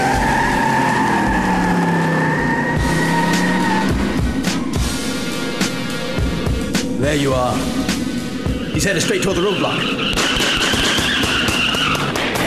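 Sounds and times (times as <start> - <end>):
car engine roaring at full throttle: 0.0 - 12.4
car tires squealing in a long skid: 0.0 - 12.4
speech: 7.1 - 8.0, 8.8 - 10.4
sharp knocks and clatters: 10.0 - 12.4.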